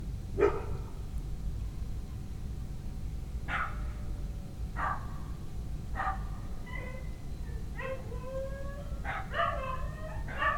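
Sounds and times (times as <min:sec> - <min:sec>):
steady low rumbling background noise: 0:00.0 - 0:10.5
dog barking and howling at night in a village: 0:00.4 - 0:00.8, 0:04.8 - 0:05.1, 0:06.0 - 0:10.5.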